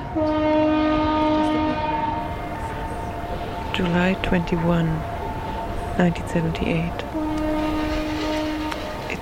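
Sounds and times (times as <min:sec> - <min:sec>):
foghorn blast: 0:00.0 - 0:03.7, 0:07.0 - 0:09.1
speech: 0:00.2 - 0:00.4, 0:03.8 - 0:05.2, 0:06.0 - 0:07.1.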